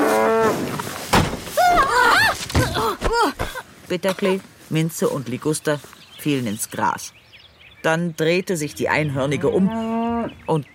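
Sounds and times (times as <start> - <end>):
heavy wooden thuds: 1.0 - 3.6
speech: 3.9 - 7.2, 7.8 - 10.7
angry cow mooing and bellowing: 9.3 - 10.4.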